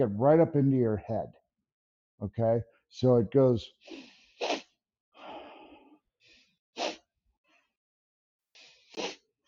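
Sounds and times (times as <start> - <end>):
speech: 0.0 - 1.4, 2.2 - 4.6
quick nasal sniff: 3.9 - 4.7, 6.3 - 7.0, 8.6 - 9.2.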